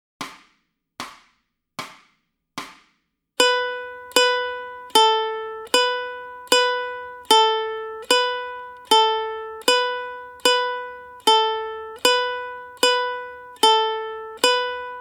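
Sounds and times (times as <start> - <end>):
ukulele warm-up on the note B: 3.4 - 15.0.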